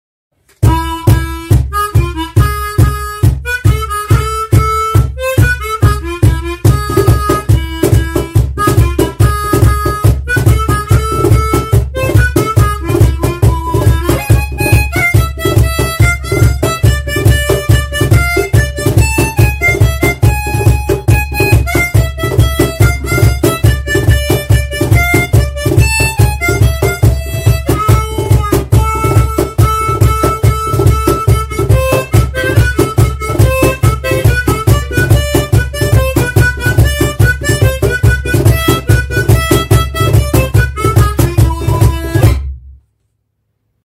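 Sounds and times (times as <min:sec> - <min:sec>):
cajon: 0:00.4 - 0:42.8.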